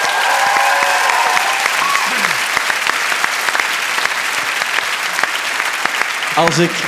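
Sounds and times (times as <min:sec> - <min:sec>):
live audience applause: 0:00.0 - 0:06.8
speech: 0:06.4 - 0:06.8.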